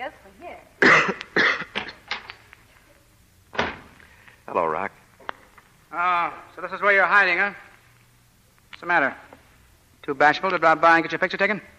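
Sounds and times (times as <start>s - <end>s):
speech: 0.0s - 0.4s, 4.6s - 5.0s, 5.9s - 7.7s, 8.8s - 9.2s, 10.1s - 11.7s
person coughing in a hacking fit: 0.8s - 2.0s.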